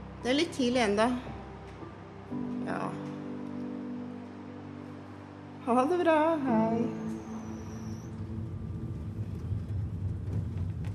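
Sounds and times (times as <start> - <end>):
faint high whine: 0.0 - 10.8
road rumble heard from inside a car: 0.0 - 10.9
speech: 0.2 - 1.3, 5.6 - 7.2
car engine drone heard from inside a car at night: 4.0 - 10.9.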